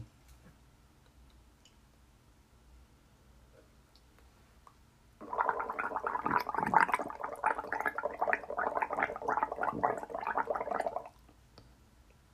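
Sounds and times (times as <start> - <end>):
person gargling water in the throat: 5.2 - 11.2.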